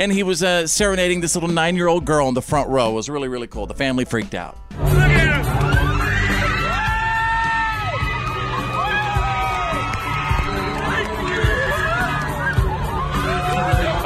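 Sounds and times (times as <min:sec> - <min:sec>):
speech: 0:00.0 - 0:05.6
concert crowd shrieking and cheering: 0:04.8 - 0:14.0.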